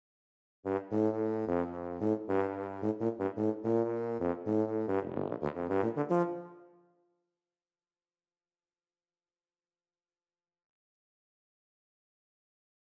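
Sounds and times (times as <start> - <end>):
tuba in a brass band: 0.6 - 6.8
brass band playing: 0.7 - 6.6.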